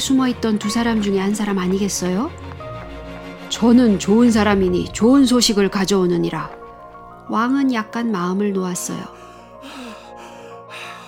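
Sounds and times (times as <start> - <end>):
speech: 0.0 - 2.5, 3.6 - 6.6, 7.3 - 9.8
heavy panting breaths of exhausted runner: 9.0 - 11.0.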